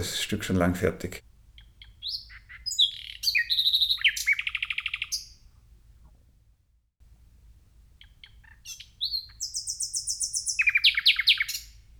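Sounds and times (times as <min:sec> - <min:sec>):
speech: 0:00.0 - 0:01.3
nightingale singing at night: 0:01.6 - 0:05.5, 0:08.0 - 0:11.8.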